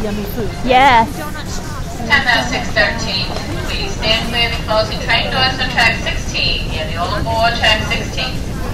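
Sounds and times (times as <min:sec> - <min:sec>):
footsteps in Penn Station hall: 0:00.0 - 0:06.9
speech: 0:00.0 - 0:08.5
crowd murmuring and chattering in Penn Station hall: 0:00.0 - 0:08.7.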